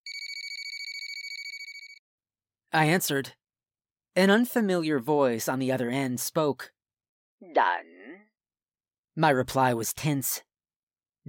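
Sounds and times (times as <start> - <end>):
telephone ringing with electronic trill: 0.1 - 2.0
speech: 2.7 - 3.4, 4.2 - 6.8, 7.4 - 7.9, 9.2 - 10.5.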